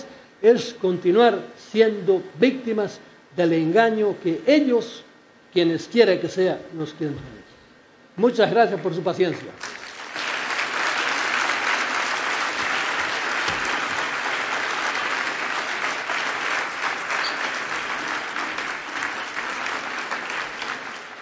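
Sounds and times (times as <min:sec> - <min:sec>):
speech: 0:00.4 - 0:07.4, 0:08.2 - 0:09.8
audience applause after a speaker's talk at a conference: 0:09.6 - 0:21.2.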